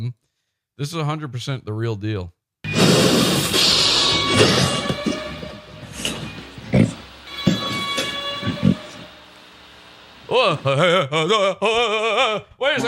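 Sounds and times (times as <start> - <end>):
speech: 0.0 - 0.2, 0.8 - 2.4, 4.3 - 5.2, 10.3 - 12.8
nitrous gas hissing out of a whipped cream canister: 2.7 - 11.0
warbling wobbly distorted voice of a man inhaling nitrous: 2.8 - 9.2, 10.2 - 11.1.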